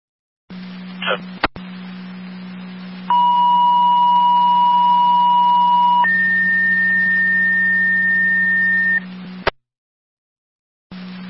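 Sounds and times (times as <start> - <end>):
constant low hum: 0.5 - 9.5
radio channel static: 0.9 - 1.6, 3.1 - 9.5
two-tone emergency paging signal over a radio channel: 3.1 - 9.0.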